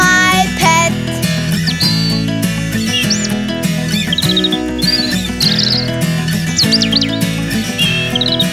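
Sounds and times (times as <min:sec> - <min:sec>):
steady upbeat musical backing: 0:00.0 - 0:08.5
bird chirping and tweeting: 0:00.9 - 0:08.5.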